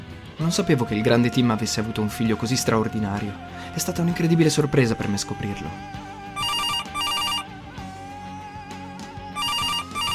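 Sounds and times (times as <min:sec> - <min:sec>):
music: 0:00.0 - 0:10.1
speech: 0:00.4 - 0:06.1
telephone ringing with rapid electronic trilling: 0:06.4 - 0:07.5, 0:09.4 - 0:10.1.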